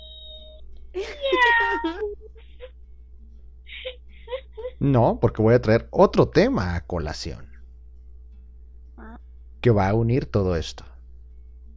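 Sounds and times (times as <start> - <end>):
cat meowing: 0.0 - 2.0
speech: 4.8 - 7.5, 9.6 - 10.9.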